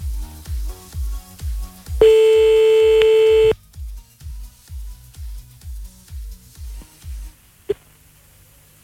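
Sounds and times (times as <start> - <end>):
telephone redial pulsing tones: 2.0 - 3.5.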